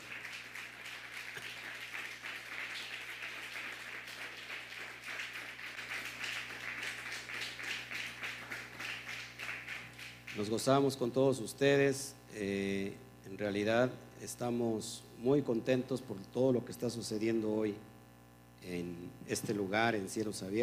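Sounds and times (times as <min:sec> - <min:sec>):
large audience applauding: 0:00.0 - 0:10.7
faint low hum: 0:00.0 - 0:20.6
speech: 0:10.4 - 0:17.9, 0:18.6 - 0:20.6.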